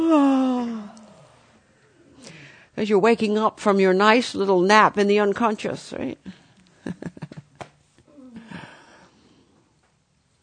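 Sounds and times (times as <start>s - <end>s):
person yawning while waking up and stretching: 0.0s - 2.5s, 8.1s - 9.1s
speech: 0.1s - 0.4s, 2.8s - 7.0s
soft breathy exhale: 0.7s - 2.8s, 8.1s - 9.7s.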